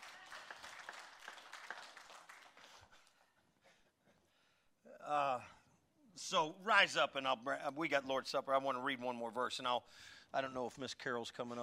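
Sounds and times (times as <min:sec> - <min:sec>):
room full of people applauding: 0:00.0 - 0:02.9
speech: 0:05.1 - 0:05.6, 0:06.2 - 0:11.6.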